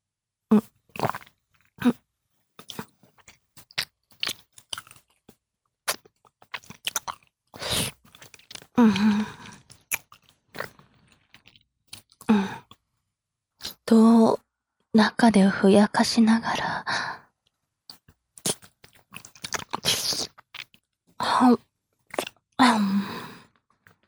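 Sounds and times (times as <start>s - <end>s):
speech: 0.5s - 1.2s, 15.0s - 17.0s
wet mouth sounds from saliva pooled in the mouth: 0.5s - 2.0s, 2.6s - 5.1s, 5.9s - 12.8s, 13.6s - 13.9s, 17.9s - 21.4s, 22.1s - 23.4s.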